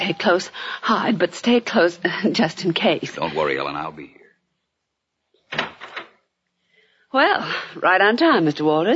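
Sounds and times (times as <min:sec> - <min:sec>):
speech: 0:00.0 - 0:04.2, 0:07.1 - 0:08.9
door opening: 0:05.4 - 0:06.2.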